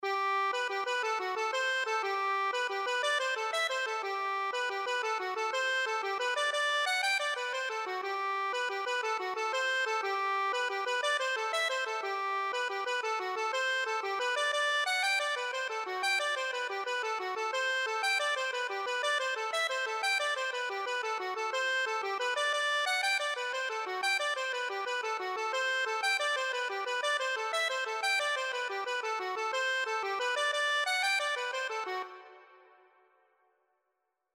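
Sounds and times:
accordion playing a rolling jig: 0.0 - 32.6.

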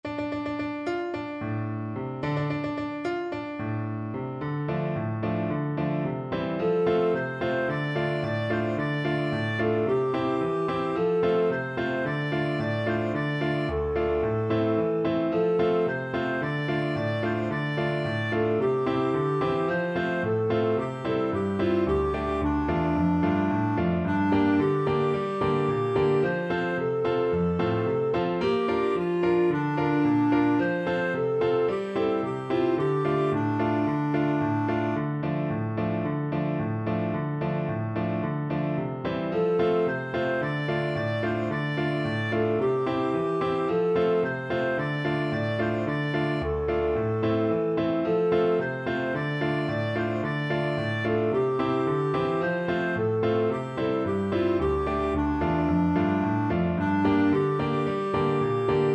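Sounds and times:
clarinet melody: 0.0 - 58.9.

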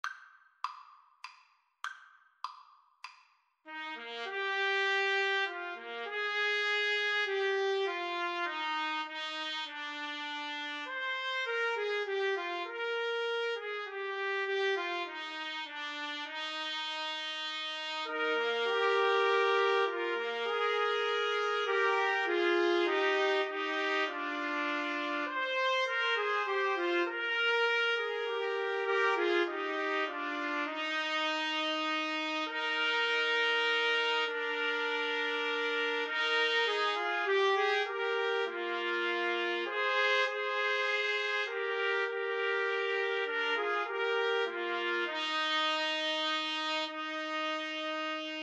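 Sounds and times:
trumpet trio playing karaoke backing: 3.7 - 48.4.

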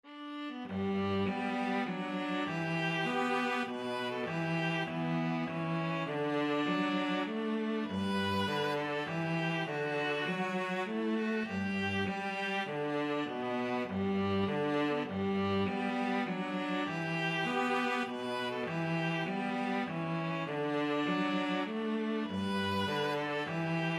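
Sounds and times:
viola and cello duet: 0.1 - 23.9.

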